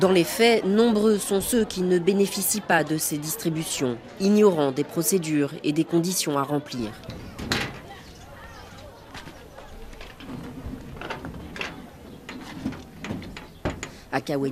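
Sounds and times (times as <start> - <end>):
speech: 0.0 - 7.2, 14.3 - 14.4
rusty sheet-metal door scraping open in Kaweni, Mayotte: 7.0 - 8.2, 10.0 - 14.1.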